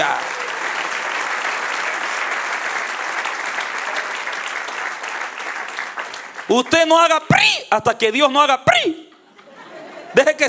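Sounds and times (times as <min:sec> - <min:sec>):
large crowd applauding: 0:00.0 - 0:07.1
speech: 0:06.5 - 0:09.0, 0:10.2 - 0:10.4
laughter: 0:09.2 - 0:10.4.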